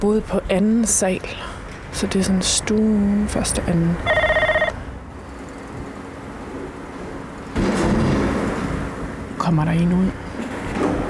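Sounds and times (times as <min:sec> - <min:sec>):
speech: 0:00.0 - 0:04.3, 0:09.5 - 0:10.2
outdoor street noise: 0:00.0 - 0:11.0
electronic doorbell ring at apartment entrance: 0:04.0 - 0:04.8.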